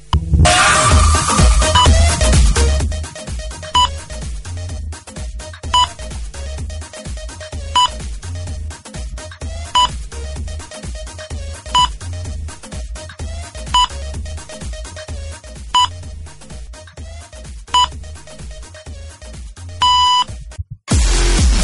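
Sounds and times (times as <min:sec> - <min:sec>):
thumping dance music on a radio broadcast: 0:00.2 - 0:21.6
electronic New Year's Eve countdown beeps: 0:01.7 - 0:02.0, 0:03.7 - 0:04.0, 0:05.7 - 0:06.0, 0:07.7 - 0:08.0, 0:09.8 - 0:10.0, 0:11.7 - 0:12.0, 0:13.7 - 0:14.0, 0:15.7 - 0:16.0, 0:17.7 - 0:18.0, 0:19.8 - 0:20.3.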